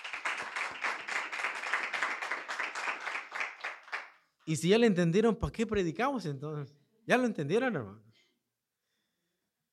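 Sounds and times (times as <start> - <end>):
audience clapping hands in a steady lively rhythm: 0.0 - 4.4
speech: 4.5 - 8.1.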